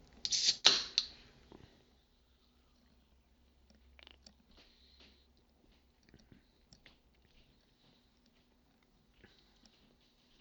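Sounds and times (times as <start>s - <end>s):
person sipping soda: 0.2s - 1.1s.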